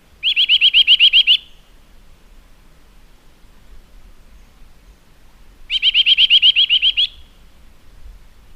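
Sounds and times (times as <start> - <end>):
Eurasian nuthatch giving upslurred whistled notes: 0.2 - 1.6, 5.7 - 7.4.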